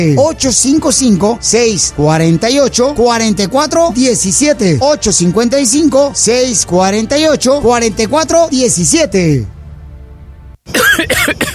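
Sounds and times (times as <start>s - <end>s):
speech: 0.0s - 9.6s, 10.7s - 11.4s
person coughing harshly: 10.7s - 11.5s.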